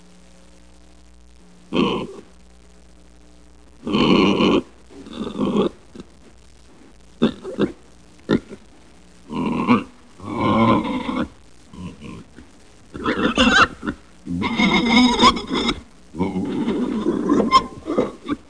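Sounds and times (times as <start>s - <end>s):
pig snorting: 3.8s - 6.1s, 7.2s - 8.7s, 9.3s - 18.4s.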